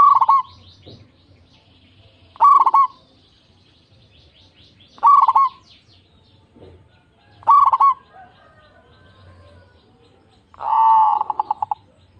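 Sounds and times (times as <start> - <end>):
zebra dove cooing: 0.0 - 0.7, 2.4 - 3.0, 5.0 - 5.6, 7.3 - 9.8, 10.5 - 12.1.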